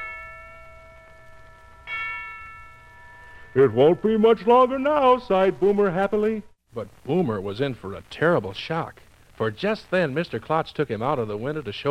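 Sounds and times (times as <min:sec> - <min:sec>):
town clock bell striking the hour: 0:00.0 - 0:04.8
speech: 0:03.6 - 0:11.8.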